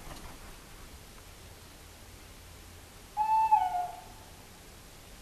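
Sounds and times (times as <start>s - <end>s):
tawny owl hooting: 3.1s - 4.4s.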